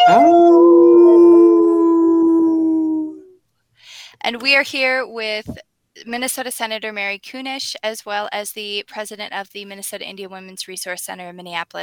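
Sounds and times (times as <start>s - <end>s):
person imitating a wolf howl: 0.0s - 3.4s
speech: 0.1s - 0.4s, 4.2s - 11.8s.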